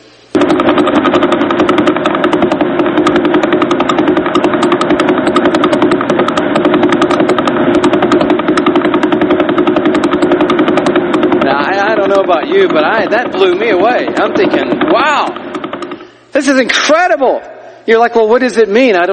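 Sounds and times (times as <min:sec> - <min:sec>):
Vela pulsar radio signal converted to audio: 0:00.0 - 0:16.6
speech: 0:12.6 - 0:15.4, 0:16.4 - 0:19.1.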